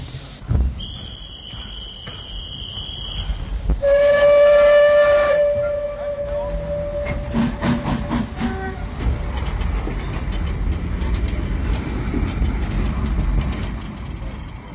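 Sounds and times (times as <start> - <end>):
rolling rumble of train wagons pulling away: 0.0 - 14.7
station duty officer's shrill high whistle: 0.8 - 7.2
train's loud drawn-out whistle: 0.8 - 8.9.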